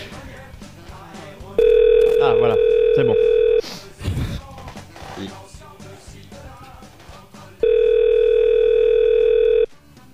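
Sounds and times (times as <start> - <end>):
telephone ringing tone while calling someone back: 1.6 - 3.6, 7.6 - 9.7
speech: 2.4 - 3.3.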